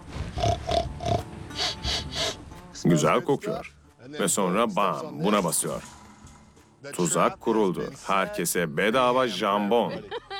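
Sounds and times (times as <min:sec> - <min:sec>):
person imitating a pig grunting and snorting: 0:00.4 - 0:02.4
speech: 0:02.8 - 0:06.0, 0:06.8 - 0:10.3
laughter: 0:09.8 - 0:10.3.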